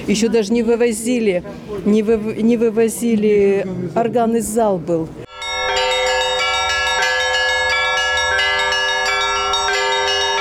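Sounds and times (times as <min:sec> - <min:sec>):
speech: 0:00.1 - 0:05.2
bells of a mobile church bell tower pealing after the liturgy: 0:05.3 - 0:10.4.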